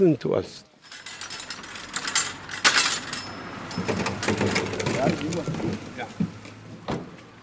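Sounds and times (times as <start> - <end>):
speech: 0.0 - 1.0, 3.8 - 6.3
sharp knocks and mechanical rattles: 0.8 - 5.9
water containers thudding and clattering as stacked into a car trunk: 3.7 - 7.2.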